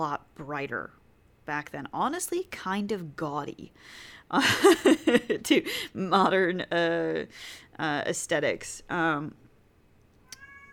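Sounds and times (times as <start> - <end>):
speech: 0.0 - 9.4
upset male pet cat meowing: 10.2 - 10.7.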